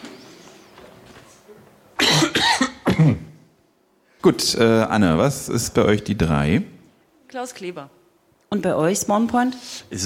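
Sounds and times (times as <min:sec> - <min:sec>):
person coughing: 0:02.0 - 0:03.4
speech: 0:03.0 - 0:03.2, 0:04.2 - 0:10.0.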